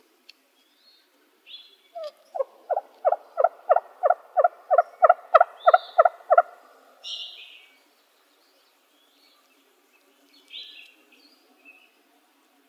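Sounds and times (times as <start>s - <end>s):
wild turkey gobbling in Arizona: 2.0s - 6.6s.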